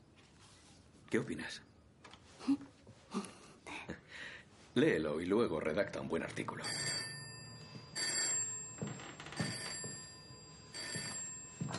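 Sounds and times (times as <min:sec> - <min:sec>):
speech: 0:01.1 - 0:01.7, 0:02.4 - 0:03.3, 0:04.8 - 0:06.9
telephone bell ringing with a rattling trill: 0:06.6 - 0:11.7.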